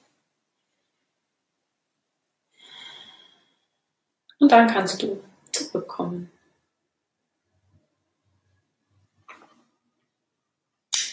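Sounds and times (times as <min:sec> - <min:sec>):
deep breath in: 0:02.5 - 0:03.9
speech: 0:04.4 - 0:06.4.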